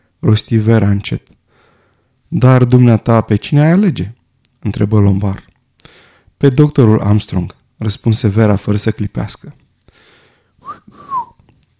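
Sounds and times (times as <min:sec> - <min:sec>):
speech: 0:00.2 - 0:01.4, 0:02.3 - 0:05.5, 0:06.4 - 0:09.6
soft human whistle with two gliding notes: 0:10.6 - 0:11.5.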